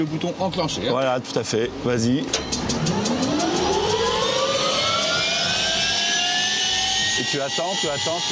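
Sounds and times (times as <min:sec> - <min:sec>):
speech: 0:00.0 - 0:03.1, 0:07.2 - 0:08.3
jet engine spooling up toward 62% N1: 0:02.3 - 0:08.3.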